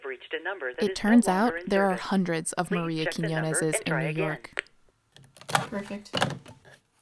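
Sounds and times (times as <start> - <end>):
speech: 0.2 - 4.7, 5.7 - 6.4
telephone keypad dialing tones: 0.8 - 4.7.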